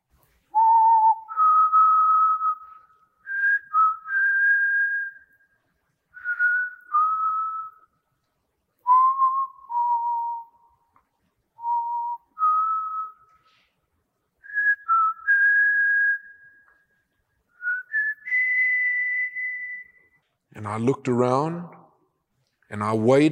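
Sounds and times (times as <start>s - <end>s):
person whistling a slow hymn on a crowded bus: 0.5s - 7.9s, 8.8s - 10.9s, 11.6s - 13.7s, 14.4s - 20.2s
speech: 20.6s - 21.8s, 22.7s - 23.2s.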